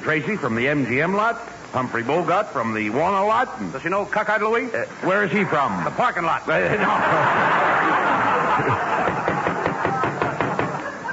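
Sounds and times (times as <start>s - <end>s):
speech: 0.0s - 9.0s
light laughter: 6.6s - 11.1s
hard knocking on a door: 9.0s - 10.8s.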